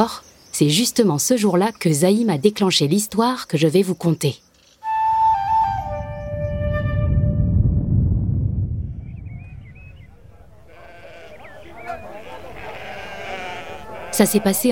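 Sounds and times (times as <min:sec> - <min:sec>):
speech: 0:00.0 - 0:04.4, 0:14.2 - 0:14.6
rumbling outdoor background: 0:00.0 - 0:14.6
flock of sheep bleating: 0:10.6 - 0:14.6.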